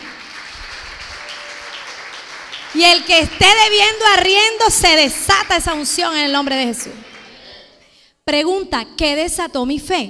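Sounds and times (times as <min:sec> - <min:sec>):
audience applauding: 0:00.0 - 0:07.7
speech: 0:02.7 - 0:07.1, 0:08.3 - 0:10.0.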